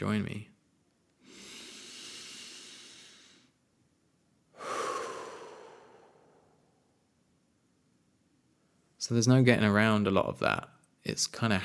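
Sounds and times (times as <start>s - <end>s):
speech: 0.0s - 0.5s, 9.1s - 11.6s
one quick human breath: 1.2s - 3.6s, 4.5s - 7.0s.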